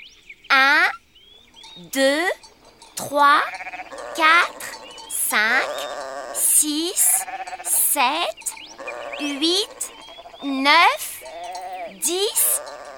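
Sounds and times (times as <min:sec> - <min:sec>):
speech: 0:01.8 - 0:04.7, 0:05.3 - 0:06.0, 0:06.6 - 0:08.4, 0:09.2 - 0:09.8, 0:10.4 - 0:11.1, 0:12.0 - 0:12.5
flock of sheep bleating on a farm: 0:03.3 - 0:07.9, 0:08.6 - 0:12.9.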